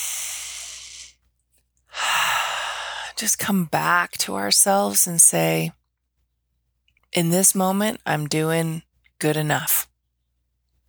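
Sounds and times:
deep breaths during a calming exercise: 0:00.0 - 0:01.1, 0:01.9 - 0:03.2
speech: 0:03.2 - 0:05.8, 0:07.1 - 0:09.9.

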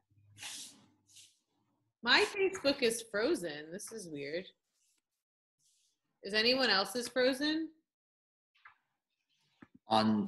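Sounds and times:
broom sweeping across a floor: 0:00.4 - 0:01.5
speech: 0:02.0 - 0:04.6, 0:06.2 - 0:07.8, 0:09.9 - 0:10.2.

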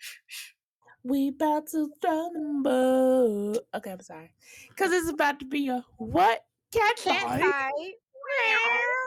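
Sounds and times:
speech: 0:01.0 - 0:09.0
cats yowling in a fight: 0:08.2 - 0:09.0.

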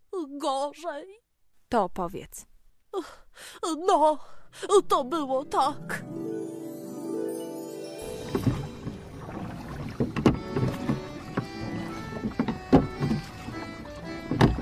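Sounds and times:
speech: 0:00.3 - 0:06.5
small paper toy boat splashing in a puddle: 0:08.2 - 0:14.6.

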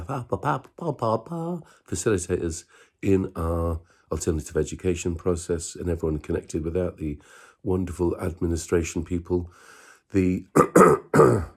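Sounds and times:
speech: 0:00.1 - 0:11.5
person clearing throat: 0:10.6 - 0:11.5.

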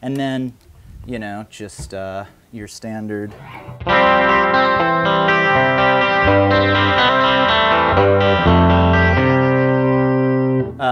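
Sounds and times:
speech: 0:00.0 - 0:08.8
electric guitar playing sustained chords through Princeton Reverb amp: 0:03.4 - 0:10.8.

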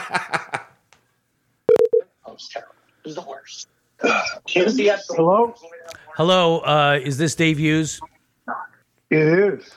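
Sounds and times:
telephone keypad tones: 0:01.7 - 0:02.0
speech: 0:02.4 - 0:08.1, 0:09.1 - 0:09.7.

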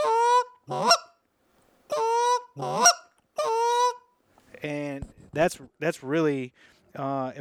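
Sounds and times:
person calling geese with short rising clucks: 0:00.0 - 0:01.2, 0:01.9 - 0:04.0
speech: 0:00.7 - 0:01.0, 0:02.6 - 0:03.0, 0:04.6 - 0:07.3.

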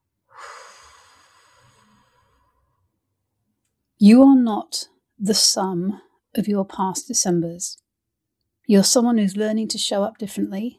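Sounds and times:
deep breath in and out: 0:00.2 - 0:03.0
speech: 0:04.0 - 0:07.8, 0:08.7 - 0:10.7.

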